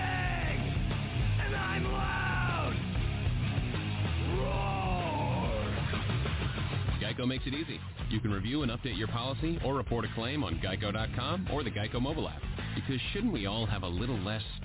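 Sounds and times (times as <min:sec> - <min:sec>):
person yelling and screaming heavy metal vocals: 0:00.0 - 0:00.6, 0:01.4 - 0:02.8, 0:04.2 - 0:05.8
dense wall of distorted low-end noise: 0:00.0 - 0:14.6
speech: 0:07.2 - 0:14.6.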